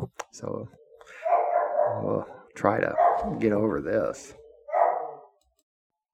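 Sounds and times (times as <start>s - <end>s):
speech: 0.4s - 1.3s, 2.0s - 4.4s
dog barking: 1.1s - 3.6s, 4.4s - 5.4s.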